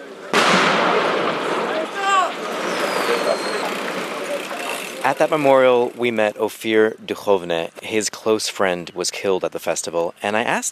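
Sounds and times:
artillery firing across the border into Gaza: 0.3 - 3.9
speech: 5.0 - 10.7.

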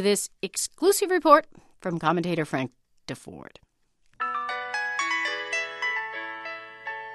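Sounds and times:
speech: 0.0 - 3.6
electronic cell phone ringtone melody: 4.2 - 7.1.

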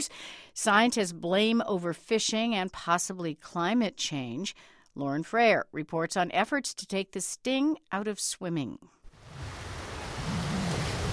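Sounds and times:
speech: 0.0 - 9.0
waves lapping on white sand at a Mediterranean beach on Formentera: 9.2 - 11.1.

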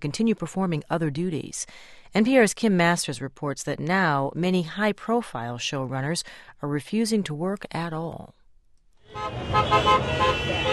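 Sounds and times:
speech: 0.0 - 8.4, 9.1 - 10.7
car horns honking in support of picketers: 9.0 - 10.7
rumble of passing traffic: 9.0 - 10.7.

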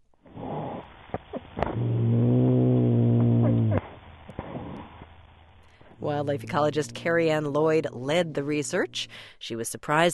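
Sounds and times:
cat growling under a car at a dog in Athens Georgia: 0.4 - 4.9, 6.0 - 9.4
speech: 6.0 - 10.1.

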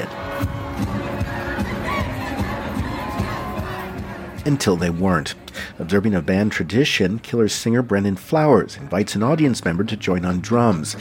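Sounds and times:
packed crowd cheering at live concert in Batumi Georgia: 0.0 - 5.1
thumping concert beats: 0.0 - 5.6
speech: 0.8 - 1.0, 4.4 - 10.9.

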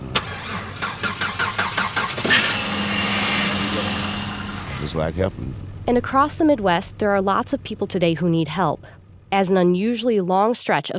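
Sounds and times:
car engine cranking during battery jump-start: 0.0 - 9.5
speech: 5.0 - 10.9.

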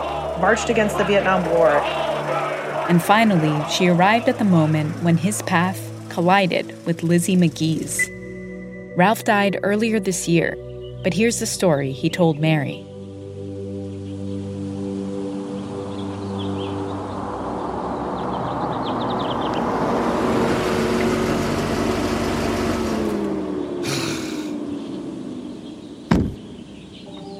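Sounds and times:
car engine humming as the car pulls up: 0.0 - 27.3
speech: 0.4 - 8.1, 9.0 - 12.9
car door slamming shut: 26.1 - 26.6.

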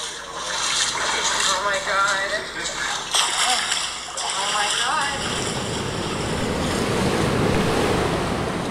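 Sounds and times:
water churning and rushing through a dam stilling basin: 0.0 - 8.7
wind buffeting the microphone: 5.2 - 8.7.

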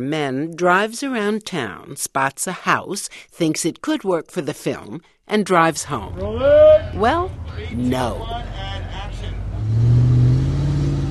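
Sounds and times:
speech: 0.0 - 8.6
car engine revving in a filmed car chase: 6.0 - 11.1.

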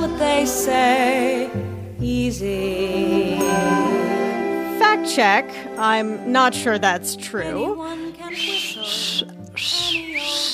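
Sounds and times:
soft sustained tones: 0.0 - 9.0
speech: 0.4 - 3.7, 5.0 - 9.8
person whistling a clear high melody: 8.3 - 10.5.

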